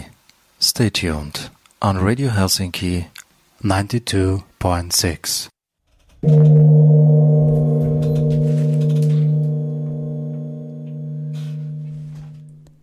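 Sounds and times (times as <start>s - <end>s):
speech: 0.6s - 5.6s, 6.2s - 7.4s
single loud gong strike marking the start of a radio play: 6.2s - 12.8s.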